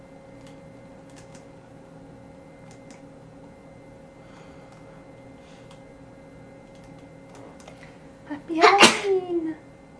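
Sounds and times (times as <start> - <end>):
person sneezing: 8.6 - 9.2.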